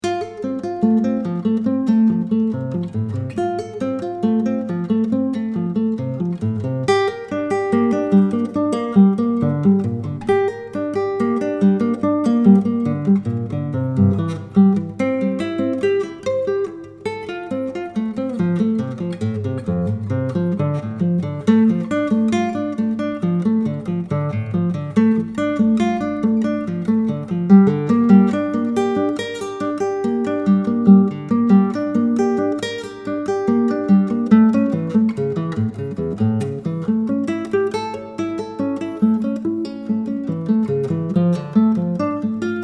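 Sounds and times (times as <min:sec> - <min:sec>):
classical guitar solo triad study: 0:00.0 - 0:42.6.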